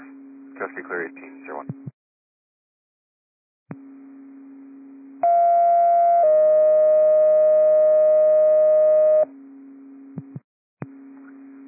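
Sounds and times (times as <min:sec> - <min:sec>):
speech: 0:00.6 - 0:01.9
low hum on a dispatch radio: 0:03.8 - 0:11.6
two-part radio dispatch alert tone sequence: 0:05.2 - 0:09.2.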